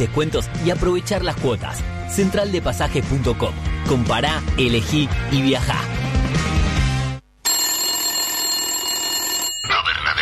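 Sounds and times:
speech: 0.0s - 6.1s
telephone in a tavern ringing with bright trilling tone: 7.4s - 10.1s.

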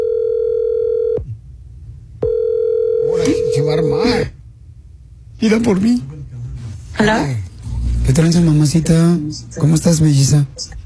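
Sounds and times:
low-pitched telephone ringback tone while a call is placed: 0.0s - 1.2s, 2.2s - 3.8s
speech: 5.4s - 6.2s, 7.0s - 7.4s, 8.1s - 10.8s.

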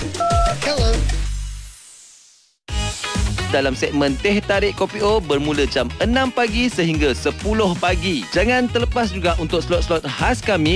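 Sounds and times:
short electronic telephone keypad tones: 0.0s - 0.9s
speech: 3.5s - 10.7s.

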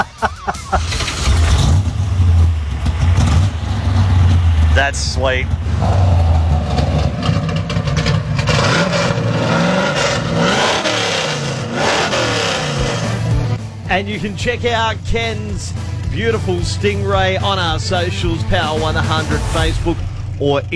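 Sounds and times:
laughter: 0.0s - 1.3s
modified small-block car engine with open exhaust cutouts revving: 0.0s - 20.7s
speech: 4.9s - 6.0s, 13.9s - 20.7s.

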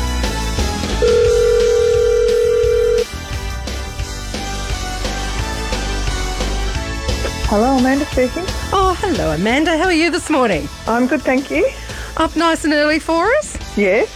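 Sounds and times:
continuous music bed: 0.0s - 14.1s
ringback tone of an outgoing phone call: 1.0s - 3.1s
speech: 7.5s - 14.1s.

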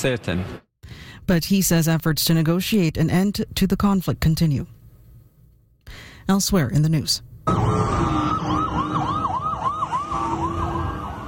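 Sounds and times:
speech: 0.0s - 0.7s, 1.3s - 4.8s, 5.9s - 8.2s
street traffic rumble: 7.3s - 11.2s
emergency vehicle sirens wailing: 7.5s - 11.2s.

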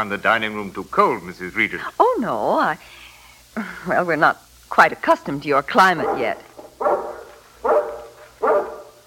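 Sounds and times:
speech: 0.0s - 3.0s, 3.6s - 6.5s
mountain guard dog barking: 5.9s - 9.0s.

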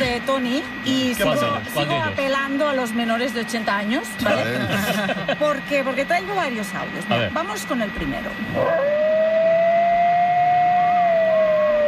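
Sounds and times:
speech: 0.2s - 9.2s
laughter: 4.2s - 5.6s
coyote howling: 8.5s - 11.8s.

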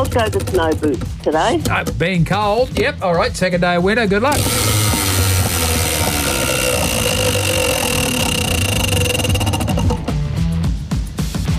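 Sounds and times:
speech: 0.1s - 4.8s
loud music: 4.3s - 11.5s
prize wheel spinning with its pointer clicking: 4.4s - 10.1s.

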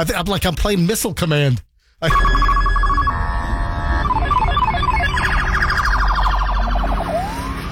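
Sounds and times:
speech: 0.0s - 2.6s
new highway patrol police car siren: 2.1s - 7.6s.

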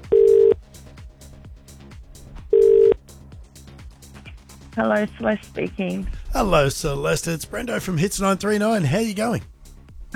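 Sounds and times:
telephone ringing out on the line: 0.0s - 0.6s, 2.5s - 3.0s
steady music bed: 0.0s - 10.1s
speech: 4.8s - 9.5s.

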